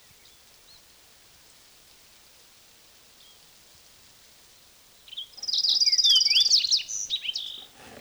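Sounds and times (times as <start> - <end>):
Fox Sparrow song: 5.1 - 7.9.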